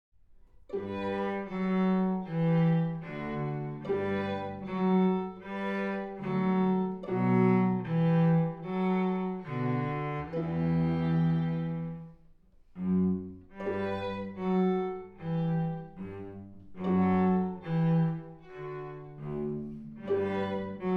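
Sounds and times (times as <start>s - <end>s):
cello: 0.2s - 20.9s.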